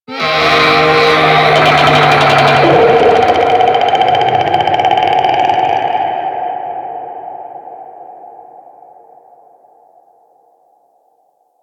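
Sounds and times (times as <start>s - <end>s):
short golem monster vocal attack: 0.2s - 6.4s.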